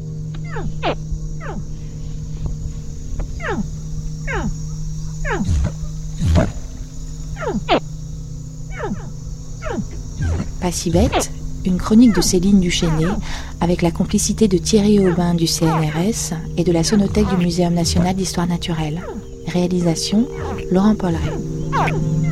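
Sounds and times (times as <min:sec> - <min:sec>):
steady low hum: 0:00.0 - 0:22.3
young caiman contact calls, short sharp downward-sweeping chirps: 0:00.4 - 0:01.7, 0:03.4 - 0:07.9, 0:08.7 - 0:22.3
speech: 0:10.7 - 0:22.3.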